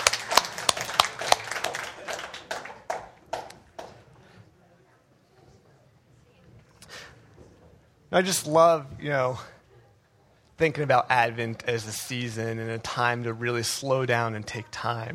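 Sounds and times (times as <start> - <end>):
church audience cheering: 0.0 - 3.1
church audience clapping: 0.0 - 4.2
speech: 8.1 - 9.6, 10.6 - 15.1.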